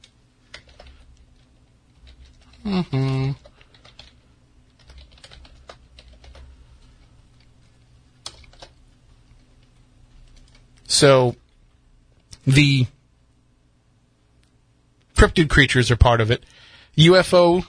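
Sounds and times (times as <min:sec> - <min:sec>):
typing on a computer keyboard: 0:00.0 - 0:06.5, 0:08.2 - 0:10.8
speech: 0:02.6 - 0:03.4, 0:11.0 - 0:11.4, 0:12.4 - 0:13.0, 0:15.2 - 0:17.6.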